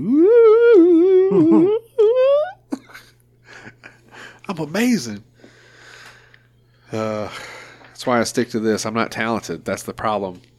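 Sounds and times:
voice imitating a theremin's wavering gliding tone: 0.0 - 2.7
person murmuring: 0.0 - 3.0
breathy laughter: 1.2 - 4.4
speech: 1.3 - 1.8, 4.6 - 5.3, 6.9 - 10.5.

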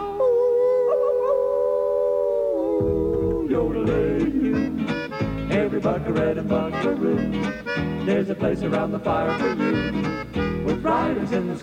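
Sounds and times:
human voices imitating wolves howling: 0.1 - 4.9
speech: 5.7 - 11.6.

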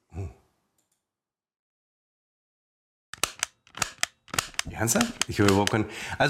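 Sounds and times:
toy gun clicks: 3.2 - 5.8
toy gun fired with ammunition: 3.2 - 5.8
speech: 4.7 - 6.2.

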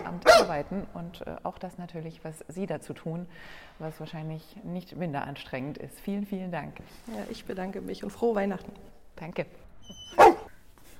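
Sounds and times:
dog barking: 0.0 - 0.6, 10.0 - 10.5
speech: 0.1 - 10.4.

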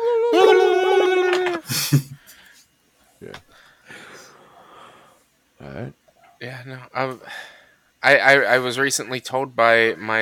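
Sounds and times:
person howling in imitation of a dog: 0.0 - 1.7
breathy laughter: 1.6 - 2.3
speech: 6.7 - 10.1.

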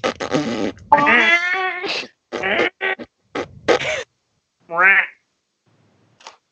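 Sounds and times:
squawky duck-like quacking fart sounds: 0.0 - 4.0.

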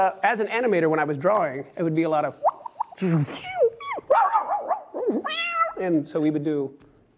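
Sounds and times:
speech: 0.0 - 4.2, 5.3 - 6.9
person imitating a dog barking and yipping: 2.4 - 5.8.

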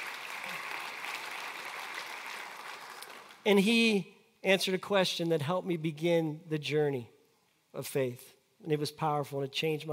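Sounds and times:
audience clapping: 0.0 - 3.5
speech: 3.4 - 7.1, 7.7 - 9.9.

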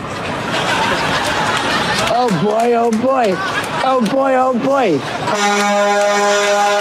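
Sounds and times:
laughter: 0.2 - 5.2
speech: 2.2 - 6.7
truck horn blaring: 5.2 - 6.7.

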